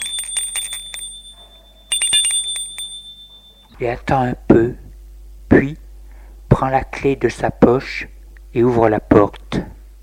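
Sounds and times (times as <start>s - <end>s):
doorbell ringing at an apartment door in an old building: 0.0s - 3.8s
speech: 3.8s - 4.9s, 5.5s - 5.8s, 6.6s - 9.7s.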